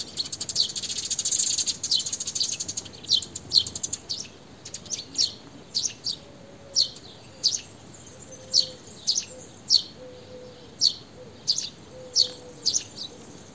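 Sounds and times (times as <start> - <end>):
house sparrow Passer domesticus chirping: 0.0 - 13.5.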